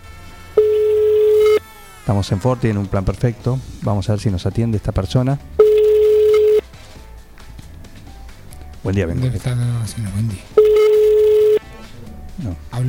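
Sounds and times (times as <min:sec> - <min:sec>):
telephone ringback tone on an outgoing call: 0:00.6 - 0:01.6, 0:05.6 - 0:06.7, 0:10.6 - 0:11.7
phone line hum: 0:00.6 - 0:01.7, 0:05.6 - 0:06.7, 0:10.6 - 0:11.7
speech: 0:02.1 - 0:05.6, 0:08.9 - 0:10.6.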